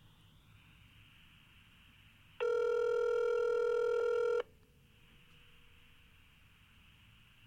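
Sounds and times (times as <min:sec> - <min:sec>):
quiet phone line hiss: 0:00.0 - 0:02.4, 0:04.6 - 0:07.4
buzzy phone call ringback tone: 0:02.4 - 0:04.5.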